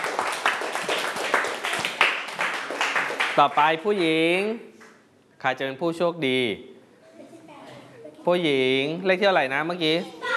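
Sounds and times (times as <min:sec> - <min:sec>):
group of children clapping for a classmate: 0:00.0 - 0:03.8
speech: 0:03.4 - 0:04.7, 0:05.4 - 0:06.7, 0:08.2 - 0:10.2.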